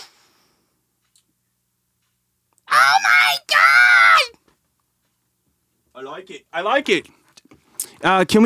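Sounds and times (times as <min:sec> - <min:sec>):
person yelling imitating a toad: 0:02.7 - 0:04.3
speech: 0:06.2 - 0:07.2, 0:08.0 - 0:08.4.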